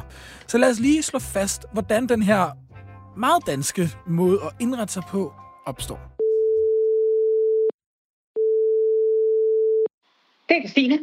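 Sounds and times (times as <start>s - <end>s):
speech: 0.1s - 2.6s, 3.2s - 6.1s, 10.5s - 11.0s
telephone ringing tone on an outgoing call: 6.2s - 7.7s, 8.4s - 9.9s.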